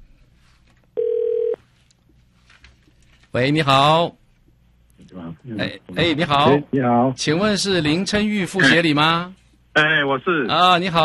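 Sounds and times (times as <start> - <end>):
faint low hum: 0.0 - 11.0
telephone line ringback tone: 1.0 - 1.6
speech: 3.3 - 4.2, 5.4 - 11.0.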